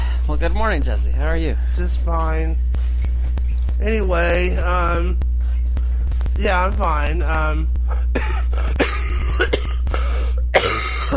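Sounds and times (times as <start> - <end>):
steady low hum: 0.0 - 11.1
speech: 0.3 - 2.9, 3.8 - 5.2, 6.3 - 9.6
raspy coughs and throat-clearing: 7.9 - 11.1.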